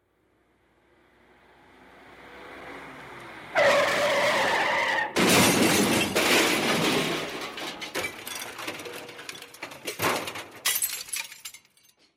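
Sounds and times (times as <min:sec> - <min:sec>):
car skidding: 0:01.6 - 0:07.2
car crash: 0:03.5 - 0:11.4.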